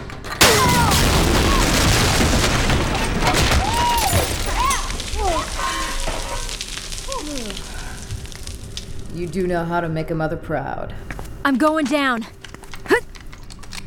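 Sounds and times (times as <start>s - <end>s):
chain of grenade blasts in a video game: 0.4s - 9.1s
sizzling explosion debris in a video game: 0.4s - 9.7s
speech: 9.3s - 13.0s.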